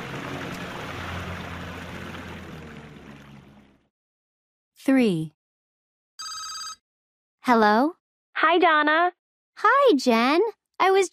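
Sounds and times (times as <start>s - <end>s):
churning water from a motorboat: 0.0s - 3.9s
motorboat engine running: 0.0s - 3.9s
speech: 4.8s - 5.4s, 7.4s - 11.1s.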